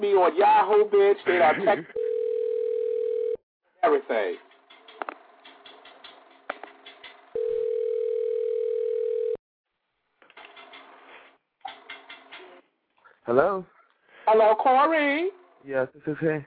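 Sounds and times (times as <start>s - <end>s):
speech: 0.0s - 2.0s, 3.8s - 4.4s, 13.3s - 16.4s
telephone dial tone of an outgoing call: 2.0s - 3.4s, 7.4s - 9.4s
clicks and taps: 4.4s - 7.2s.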